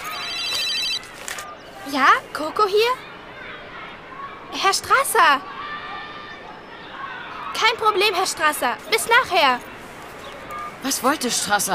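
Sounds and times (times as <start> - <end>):
mobile phone ringing with a bright electronic ringtone: 0.0 - 1.6
speech: 1.8 - 3.1, 4.5 - 5.5, 7.6 - 9.7, 10.8 - 11.7.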